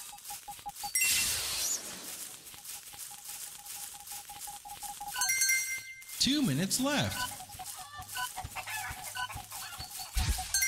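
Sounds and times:
busy bright background of chirps and tones: 0:00.0 - 0:10.6
speech: 0:06.2 - 0:07.4
chickens clucking: 0:06.3 - 0:10.6.

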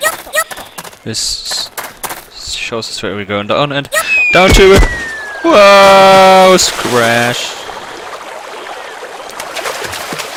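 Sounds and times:
speech: 0:01.0 - 0:01.7, 0:02.7 - 0:07.5
splashy clicks and gurgles of water: 0:04.4 - 0:10.3
steady rushing river water: 0:06.2 - 0:10.3.

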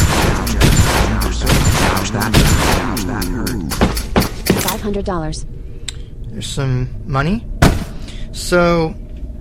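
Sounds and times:
Desert Eagle pistol gunshots from a video game: 0:00.0 - 0:04.7
speech: 0:04.8 - 0:05.7, 0:06.4 - 0:07.5, 0:08.4 - 0:09.0.

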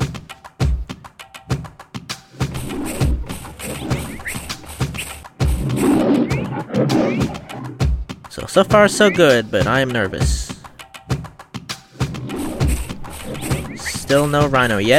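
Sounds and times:
tiger growling and roaring in a video game: 0:02.4 - 0:07.9, 0:12.0 - 0:14.9
speech: 0:08.5 - 0:10.5, 0:14.1 - 0:14.9.

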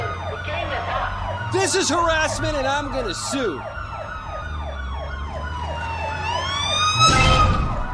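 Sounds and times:
police car siren wailing in a video game: 0:00.0 - 0:07.9
speech: 0:01.5 - 0:03.8.

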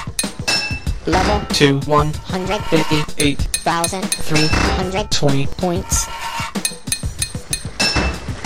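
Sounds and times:
hammer striking while fitting a metal pipe: 0:00.2 - 0:00.8, 0:02.8 - 0:04.7, 0:06.6 - 0:08.2
speech: 0:01.1 - 0:06.7.

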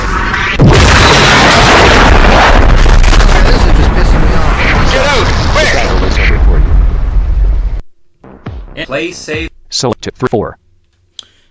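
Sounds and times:
heavy rumbling roar of a video game missile intercept explosion: 0:00.0 - 0:07.8
missile intercept explosion boom in a video game: 0:00.1 - 0:08.9
speech: 0:08.9 - 0:10.6.

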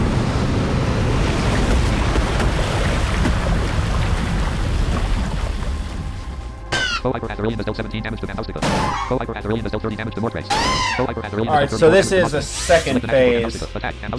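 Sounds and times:
rush of churning water as a video game water attack effect: 0:00.2 - 0:06.5
speech: 0:07.0 - 0:14.1.

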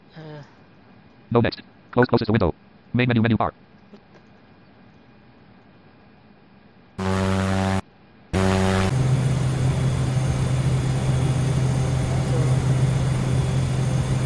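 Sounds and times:
speech: 0:01.3 - 0:03.7
short buzzy bursts: 0:07.0 - 0:07.8, 0:08.4 - 0:09.7
simulated propeller aircraft engine in a flight simulator droning: 0:07.0 - 0:07.8, 0:08.4 - 0:14.2.

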